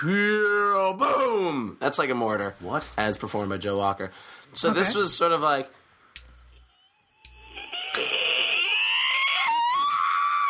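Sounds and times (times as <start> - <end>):
speech: 0.0 - 5.8
girl screaming while sprinting: 6.8 - 10.4.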